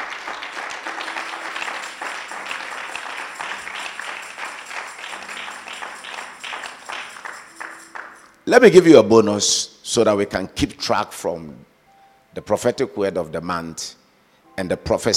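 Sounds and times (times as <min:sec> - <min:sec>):
sustained applause from a large crowd: 0:00.0 - 0:08.4
speech: 0:08.5 - 0:11.7, 0:12.4 - 0:14.0, 0:14.6 - 0:15.1.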